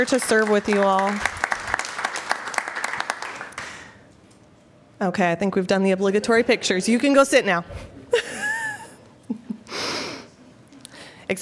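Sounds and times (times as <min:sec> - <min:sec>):
speech: 0:00.0 - 0:01.4, 0:05.0 - 0:07.9, 0:11.3 - 0:11.4
audience applause honoring members for their service: 0:00.0 - 0:04.0.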